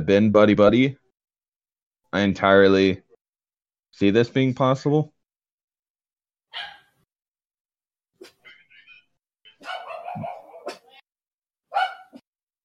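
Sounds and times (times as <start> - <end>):
speech: 0.0 - 1.0, 2.1 - 3.0, 3.9 - 5.1
dog barking: 6.5 - 6.9, 9.6 - 10.9, 11.7 - 12.2.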